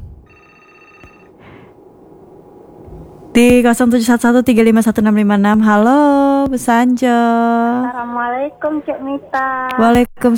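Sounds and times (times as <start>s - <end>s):
telephone ringing for an incoming call: 0.2s - 5.0s
speech: 3.4s - 10.3s.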